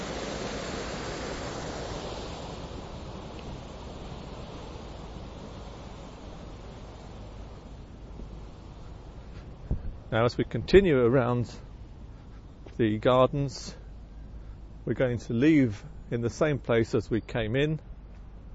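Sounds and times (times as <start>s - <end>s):
loud rushing water from a nearby waterfall: 0.0s - 9.4s
speech: 10.1s - 11.7s, 12.8s - 13.8s, 14.9s - 17.9s.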